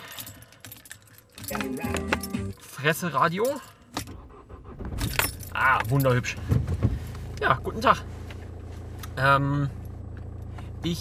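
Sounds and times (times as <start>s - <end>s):
bunch of keys jangling and clinking: 0.0s - 2.6s, 4.9s - 6.3s
speech: 1.5s - 2.2s, 2.8s - 3.7s, 5.6s - 6.6s, 7.4s - 8.1s, 9.2s - 9.8s.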